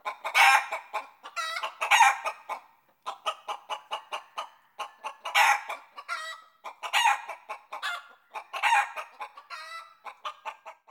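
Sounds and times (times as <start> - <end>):
chicken giving excited uneven clucks and squawks: 0.0 - 10.8.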